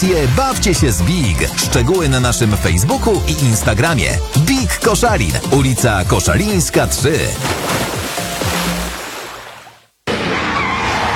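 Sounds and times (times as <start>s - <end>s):
speech: 0.0s - 8.0s
car tires screeching and skidding: 10.1s - 11.1s.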